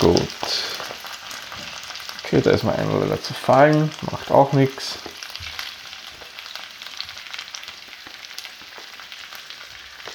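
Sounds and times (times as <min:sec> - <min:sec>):
potatoes frying in a pan: 0:00.0 - 0:10.1
speech: 0:02.3 - 0:05.2.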